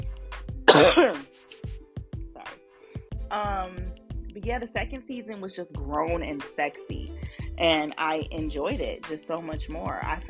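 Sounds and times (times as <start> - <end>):
person coughing harshly: 0.7 - 1.3
speech: 0.8 - 1.3, 4.4 - 10.2.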